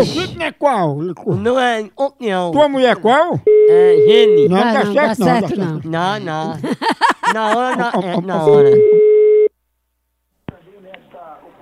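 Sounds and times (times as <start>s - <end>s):
speech: 0.0s - 9.0s
telephone call tone while placing a call: 3.5s - 4.7s, 8.5s - 9.5s
laughter: 4.2s - 9.1s.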